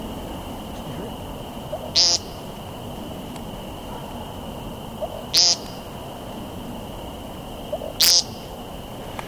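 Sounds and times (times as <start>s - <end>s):
steady faint hum: 0.0s - 9.2s
bird on the ground giving nasal buzzy peent display call: 0.8s - 2.6s, 5.0s - 6.1s, 7.7s - 8.6s.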